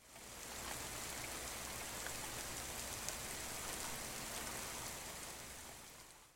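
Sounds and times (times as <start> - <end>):
rain: 0.0 - 6.3.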